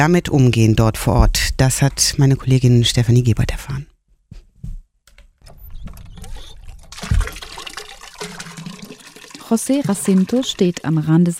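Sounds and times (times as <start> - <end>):
speech: 0.0 - 3.9, 9.5 - 11.3
hand pump mechanical knocks: 5.4 - 7.4
hand pump water gushing into a bucket: 6.1 - 11.3.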